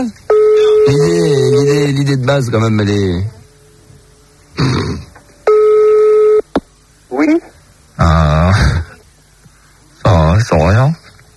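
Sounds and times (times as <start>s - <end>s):
speech: 0.0s - 0.2s, 0.9s - 3.4s
rough noisy burst on a telephone line: 0.0s - 11.3s
steady telephone line beep while dialing a private number: 0.3s - 1.7s, 5.4s - 6.5s.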